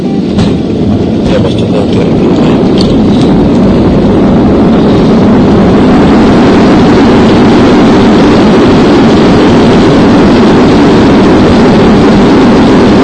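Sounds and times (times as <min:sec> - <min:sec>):
Copa Airlines passenger airliner landing at Tocumen International Airport in Panama City: 0:00.0 - 0:13.0.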